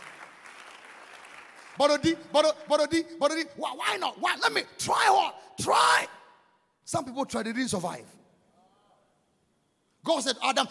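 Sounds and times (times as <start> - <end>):
audience clapping hands: 0.0 - 2.8
speech: 1.8 - 6.2, 6.9 - 8.2, 10.0 - 10.6.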